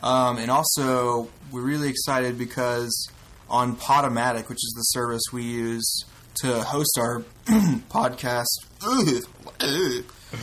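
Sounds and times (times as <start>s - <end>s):
speech: 0.0s - 10.4s
throat clearing: 7.5s - 7.9s.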